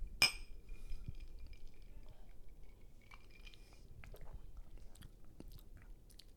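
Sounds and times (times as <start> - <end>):
whisky glasses clinking in a toast: 0.2 - 1.9
faint sipping or mouth sounds: 0.7 - 6.3.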